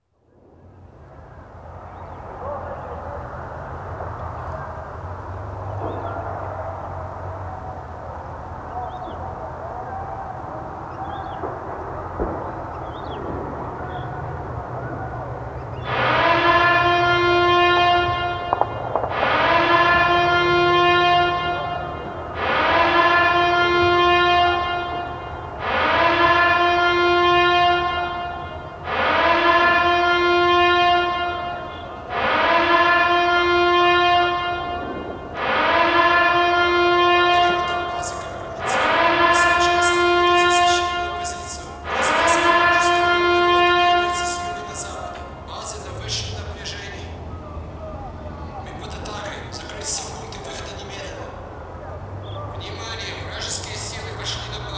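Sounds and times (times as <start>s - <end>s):
power alarm: 15.8s - 45.9s.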